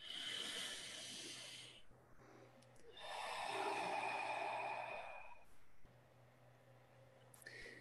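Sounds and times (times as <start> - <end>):
slow deep human breathing: 0.0 - 5.9.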